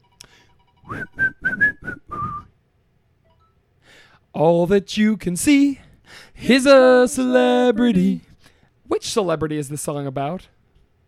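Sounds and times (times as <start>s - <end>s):
person whistling a short melody: 0.8s - 2.6s
speech: 0.9s - 1.2s, 4.4s - 8.3s, 8.9s - 10.6s.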